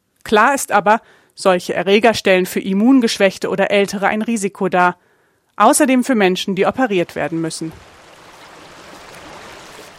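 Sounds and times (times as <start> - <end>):
speech: 0.3 - 7.9
treated water flowing from sewage treatment plant outflow into a river: 7.2 - 9.9.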